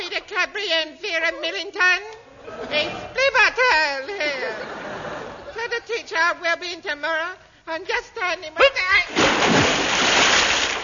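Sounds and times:
speech: 0:00.4 - 0:04.9, 0:05.6 - 0:09.8
laughter: 0:03.6 - 0:05.9
man falling into water with a loud splash: 0:09.1 - 0:10.8.

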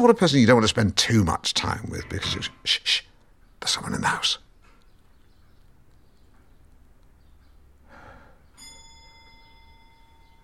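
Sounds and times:
speech: 0:00.0 - 0:04.4
long case clock bell strike ringing in a house: 0:08.6 - 0:10.4.

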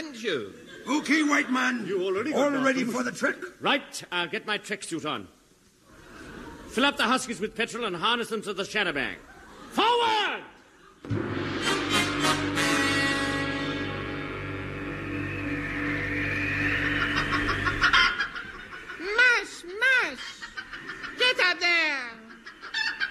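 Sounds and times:
speech: 0:00.2 - 0:05.4, 0:06.7 - 0:11.4
laughter: 0:00.6 - 0:01.8, 0:09.2 - 0:11.1, 0:16.5 - 0:23.0
steady buzzing drone: 0:11.1 - 0:19.0.

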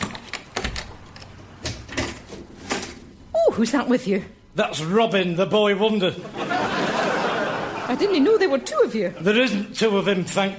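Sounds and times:
door latch and handle clicking and rattling as a door is opened: 0:00.0 - 0:02.1
speech: 0:03.6 - 0:06.8, 0:07.9 - 0:10.5
laughter: 0:06.2 - 0:09.6.

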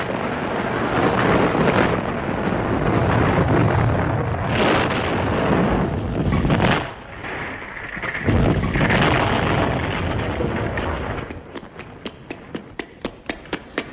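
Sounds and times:
explosion of damp gunpowder barrels set to dry by a fire: 0:00.0 - 0:11.8
sharp ticking taps: 0:11.3 - 0:13.9.

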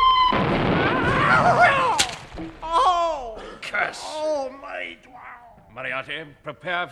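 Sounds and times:
incoming missile whistling through a rushing roar: 0:00.0 - 0:02.4
missile exploding against a wall: 0:00.2 - 0:02.6
speech: 0:03.9 - 0:05.2, 0:05.8 - 0:06.9.

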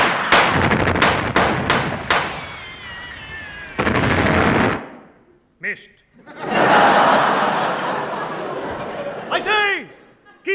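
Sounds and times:
gunfire volley from a line of soldiers' guns: 0:00.0 - 0:05.1
speech: 0:05.7 - 0:06.9
laughter: 0:06.1 - 0:10.5.

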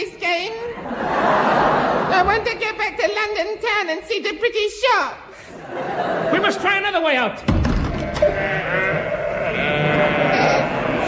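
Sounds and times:
laughter: 0:00.6 - 0:02.7, 0:05.4 - 0:06.8
speech: 0:02.4 - 0:07.6, 0:08.2 - 0:08.9
sheep bleating in a chorus: 0:07.9 - 0:11.0.

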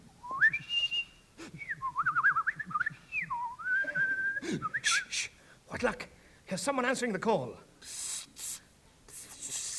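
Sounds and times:
person whistling a wandering tune: 0:00.2 - 0:05.3
speech: 0:05.8 - 0:07.7.

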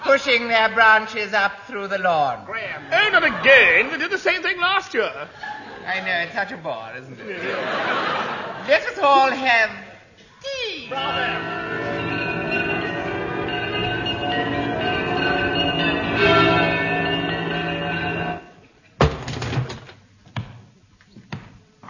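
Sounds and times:
speech: 0:00.2 - 0:09.8, 0:10.8 - 0:11.6
laughter: 0:02.8 - 0:04.1, 0:05.3 - 0:06.3, 0:07.2 - 0:09.5
bells ringing: 0:10.9 - 0:18.5.

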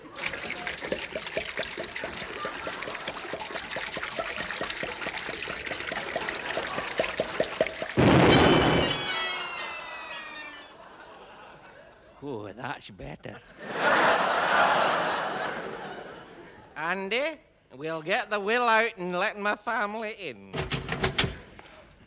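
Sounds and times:
whisky glugging out of a bottle: 0:00.0 - 0:08.0
laughter: 0:01.8 - 0:16.8
speech: 0:12.8 - 0:13.7, 0:17.1 - 0:20.6.

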